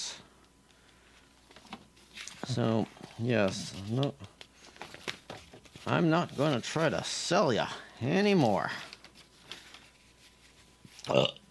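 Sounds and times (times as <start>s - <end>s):
quiet hiss: 0.0s - 11.4s
speech: 2.5s - 4.4s, 5.8s - 8.9s, 11.1s - 11.4s
short throaty burp: 11.0s - 11.4s.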